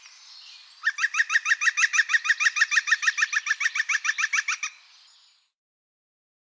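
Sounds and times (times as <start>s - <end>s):
European green woodpecker laughing: 0.8s - 4.8s.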